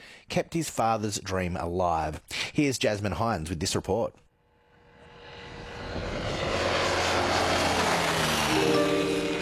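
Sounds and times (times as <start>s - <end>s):
speech: 0.3s - 4.2s
homebuilt propeller aeroplane engine droning: 4.5s - 9.4s.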